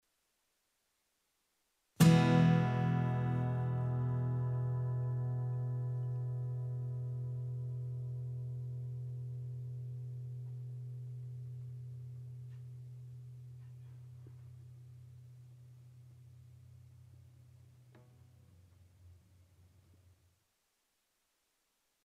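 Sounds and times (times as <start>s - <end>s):
acoustic guitar with fastest attack and slowest release: 2.0s - 18.4s.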